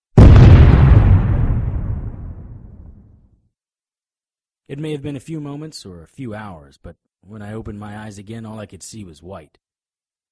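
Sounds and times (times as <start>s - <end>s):
dynamite blast with deep heavy rumble: 0.1s - 3.2s
speech: 4.7s - 9.6s.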